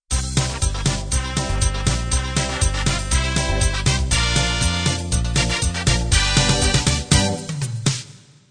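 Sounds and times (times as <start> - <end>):
1960s-70s style two-beat music intro: 0.1 - 8.4.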